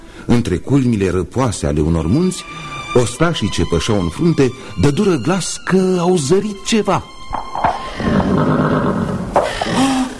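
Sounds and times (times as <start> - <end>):
speech: 0.3 - 7.1
grazing horse neighing: 7.7 - 10.1.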